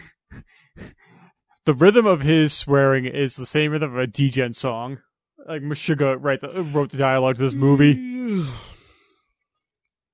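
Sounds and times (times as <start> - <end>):
speech: 1.6 - 8.7
person yawning into a microphone: 7.5 - 8.9.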